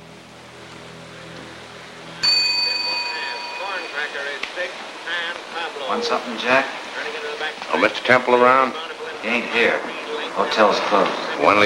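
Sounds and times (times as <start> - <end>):
reception desk bell in a hotel lobby struck by a bus passenger: 2.2 - 5.0
speech: 4.0 - 11.6.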